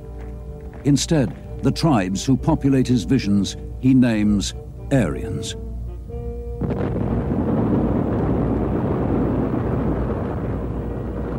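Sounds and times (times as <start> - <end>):
speech: 0.8 - 5.7
bombs exploding in war: 6.6 - 11.3.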